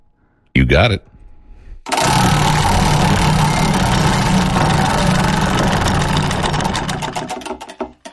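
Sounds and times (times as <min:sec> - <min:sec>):
speech: 0:00.7 - 0:01.1
name-drawing prize wheel spinning and clicking: 0:01.9 - 0:08.0.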